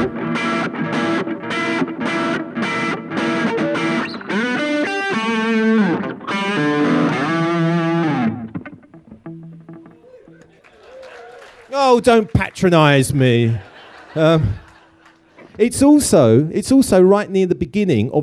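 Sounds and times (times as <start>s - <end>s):
electric guitar through an amp with gain distortion playing driven chords: 0.0s - 10.5s
laughter: 9.9s - 15.9s
speech: 11.9s - 14.6s, 15.6s - 18.2s.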